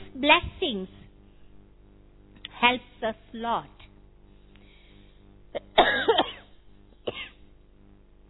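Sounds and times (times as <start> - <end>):
speech: 0.3 - 1.0, 2.7 - 3.8
person coughing: 5.6 - 7.5
person clearing throat: 7.1 - 7.5.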